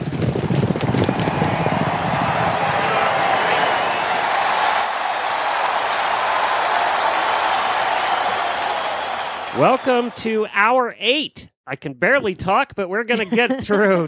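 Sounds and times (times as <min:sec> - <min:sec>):
galloping horse hooves at a race start: 0:00.0 - 0:03.4
cheering crowd: 0:00.7 - 0:11.2
speech: 0:09.6 - 0:14.0
laughter: 0:13.1 - 0:14.0.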